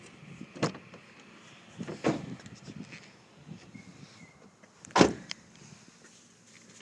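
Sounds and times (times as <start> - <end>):
new car door clunks and knocks while getting in: 1.8 - 2.4, 4.9 - 5.3.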